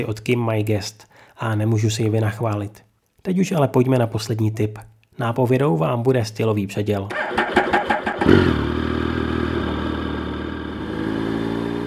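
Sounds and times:
speech: 0.0 - 7.6, 8.3 - 8.7
motorcycle engine cranking and starting: 7.1 - 11.8.

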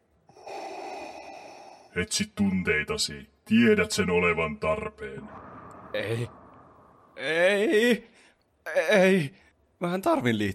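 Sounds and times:
heavy rasping breath drawn in: 0.3 - 2.0
speech: 2.0 - 6.4, 7.2 - 10.5.

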